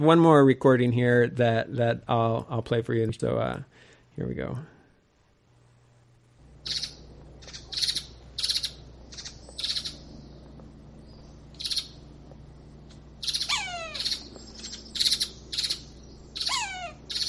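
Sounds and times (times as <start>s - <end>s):
speech: 0.0s - 4.7s, 6.6s - 6.9s
steady low hum: 0.0s - 17.2s
drawn-out descending mewing cries of a woodpecker: 6.6s - 10.1s, 11.2s - 12.0s, 13.2s - 17.2s
woodpecker, likely a sapsucker, calling in short harsh notes: 6.6s - 10.4s, 11.0s - 12.0s, 13.2s - 17.2s.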